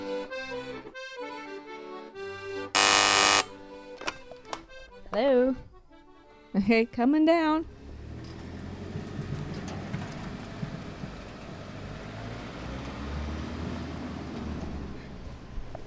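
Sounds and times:
speech: 5.1 - 5.7, 6.5 - 7.8
garbage truck driving past with heavy low engine drone: 7.6 - 15.8.

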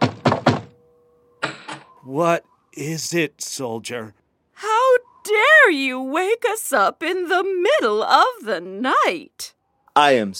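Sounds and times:
knocking on a wooden bedroom door: 0.0 - 0.7
sharp thud: 0.0 - 0.8
speech: 2.0 - 4.2, 5.4 - 10.3.

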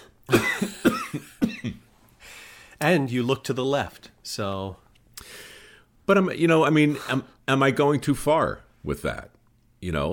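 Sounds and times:
man coughing in harsh bursts: 0.3 - 1.9
speech: 2.8 - 4.8, 6.1 - 10.1.

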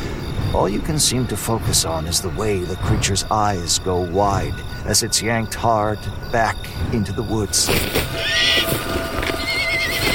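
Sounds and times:
speech: 0.5 - 9.0
restless hoof clatter: 7.6 - 10.1
horse whinnying in distress: 8.1 - 10.1.

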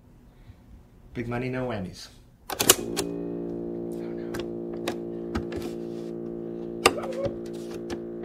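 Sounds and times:
speech: 1.2 - 3.2
cassette clunking into a tape player: 2.5 - 3.2, 4.3 - 8.2
tape player motor hum: 2.8 - 8.2.

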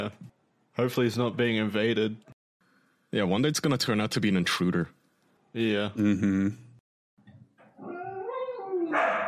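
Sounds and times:
speech: 0.0 - 0.2, 0.8 - 2.3, 3.1 - 6.6
dogs barking and yowling: 7.8 - 9.2
another dog on the floor barking: 8.8 - 9.2.

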